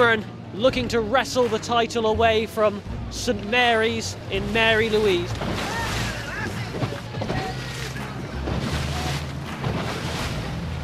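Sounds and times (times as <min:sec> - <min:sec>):
speech: 0:00.0 - 0:05.8
speedboat engine droning on open water: 0:02.8 - 0:10.8
splashing spray on open water: 0:04.7 - 0:10.8.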